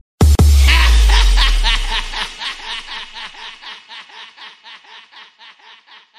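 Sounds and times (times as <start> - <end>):
bass beat: 0.0 - 2.8
laughter: 0.7 - 6.1.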